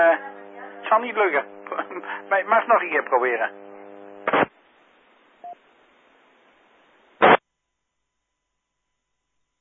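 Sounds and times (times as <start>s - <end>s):
speech: 0.0s - 3.6s
amateur radio static: 0.0s - 5.6s, 7.2s - 7.4s.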